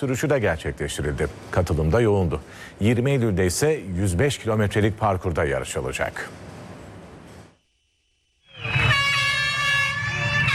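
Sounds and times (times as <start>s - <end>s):
speech: 0.0s - 6.5s
air horns blaring at the start of a mass public bicycle ride in Istanbul: 8.5s - 10.5s.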